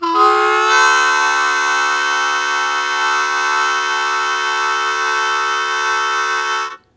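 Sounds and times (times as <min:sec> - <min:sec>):
harmonica blues chord attack: 0:00.0 - 0:06.9.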